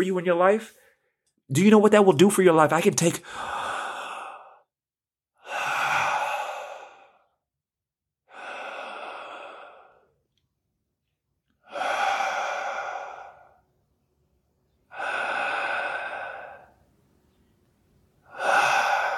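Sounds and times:
speech: 0.0 - 0.8, 1.5 - 3.6
slow conscious breaths with sighing exhales: 3.2 - 4.8, 5.4 - 7.5, 8.2 - 10.4, 11.6 - 13.8, 14.7 - 17.1, 18.1 - 19.1.

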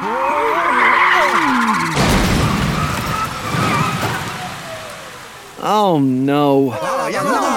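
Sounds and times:
car tires squealing as cars lose control and skid: 0.0 - 5.6
speech: 5.8 - 7.5.

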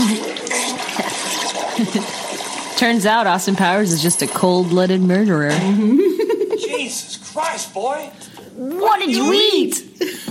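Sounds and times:
toilet flushing: 0.0 - 6.7
speech: 1.8 - 2.2, 2.8 - 6.0, 6.9 - 10.2.

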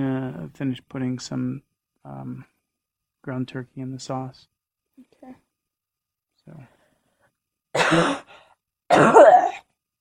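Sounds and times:
speech: 0.0 - 2.5, 3.2 - 5.4, 6.5 - 6.8, 7.8 - 9.7
person with a sore throat coughing: 7.8 - 9.7.

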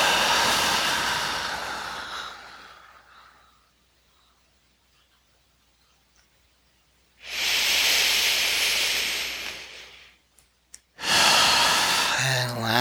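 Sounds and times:
long deep breathy exhales during a breathing exercise: 0.0 - 3.6, 7.2 - 10.2, 11.0 - 12.2.

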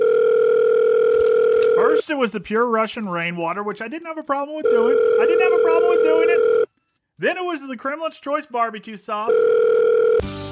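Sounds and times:
telephone dial tone: 0.0 - 1.8, 4.6 - 6.7, 9.4 - 10.2
speech: 2.1 - 6.6, 7.2 - 10.4.

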